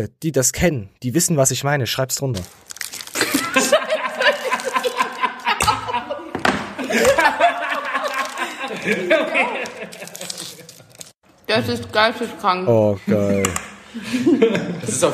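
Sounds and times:
speech: 0.0 - 3.4, 8.8 - 9.6, 11.5 - 15.1
candy bar wrapper crackling and crunching: 2.4 - 5.7, 7.7 - 8.8, 9.6 - 11.2
laughter: 3.2 - 10.7, 13.9 - 15.1.

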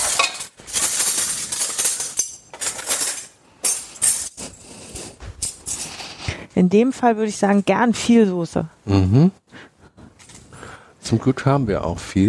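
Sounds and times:
metal cutlery clinking and rattling as pieces are gathered up: 0.0 - 6.0
speech: 6.6 - 9.4, 11.1 - 12.2.

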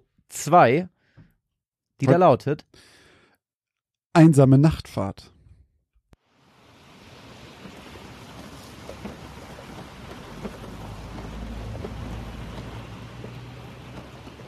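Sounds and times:
speech: 0.3 - 0.9, 2.0 - 2.9, 4.2 - 5.3
heavy rain pouring: 6.2 - 14.4.

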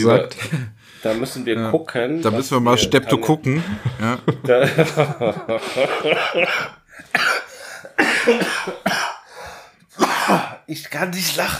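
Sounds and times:
speech: 0.0 - 7.2, 7.9 - 9.1, 10.3 - 11.5
laughter: 2.2 - 8.9
person coughing in loud harsh bursts: 6.1 - 9.3, 10.0 - 10.6.

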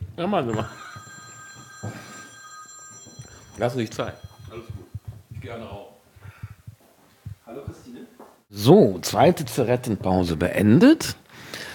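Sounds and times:
speech: 0.2 - 0.8, 3.6 - 4.6, 5.4 - 5.9, 7.5 - 11.2
telephone ringing with bell-like tones: 0.4 - 5.2
soft low thumps of movement: 3.2 - 7.9.

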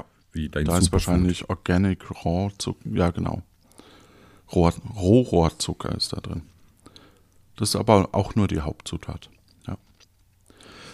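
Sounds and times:
speech: 0.4 - 3.5, 4.5 - 6.5, 7.6 - 9.9
wet chewing and mouth smacking while tasting dessert: 9.2 - 10.6.

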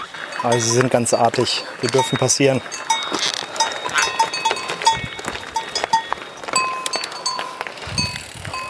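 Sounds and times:
bells of bulls grazing in a pasture clanking: 0.0 - 8.6
speech: 0.4 - 3.4.

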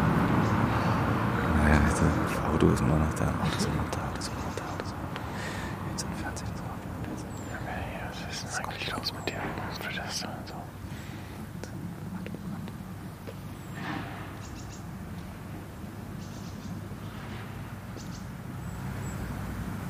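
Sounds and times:
faint bird chirps outdoors: 0.0 - 19.8
steady outdoor rumble: 0.0 - 19.8
voices: 1.4 - 10.8
speech: 2.6 - 4.4.

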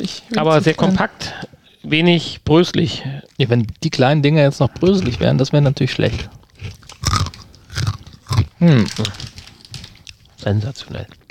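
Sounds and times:
speech: 0.0 - 6.8, 8.6 - 9.4, 10.4 - 11.2
chewing small crunchy cheese snacks: 6.0 - 11.2.

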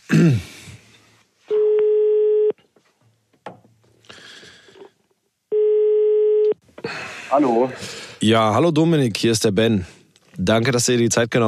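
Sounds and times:
speech: 0.2 - 0.5, 7.4 - 11.4
telephone ringing tones on the line: 1.5 - 2.5, 5.5 - 6.6.

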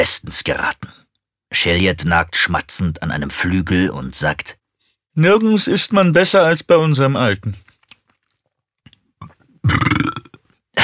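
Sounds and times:
speech: 0.0 - 4.6, 5.2 - 7.6, 9.6 - 10.2
man burping while feasting on roast turkey: 9.2 - 10.8.

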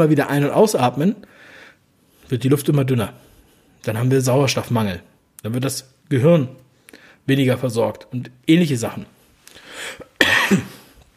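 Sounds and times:
speech: 0.0 - 1.4, 2.3 - 6.6, 7.2 - 9.2, 9.8 - 10.8
cough: 10.0 - 10.9.

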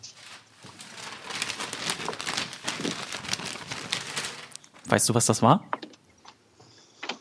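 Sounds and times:
newspaper being crumpled and crinkled: 0.0 - 5.0
speech: 4.9 - 5.8.

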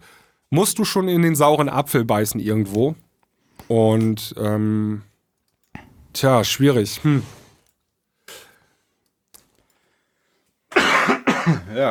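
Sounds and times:
speech: 0.5 - 3.0, 3.7 - 5.1, 6.2 - 7.4
person coughing: 10.7 - 11.9.

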